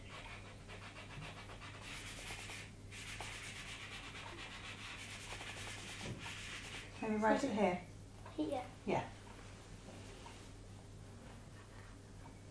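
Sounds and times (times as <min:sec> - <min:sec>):
rubber eraser rubbing out writing on paper: 0:00.0 - 0:06.9
speech: 0:07.1 - 0:09.2.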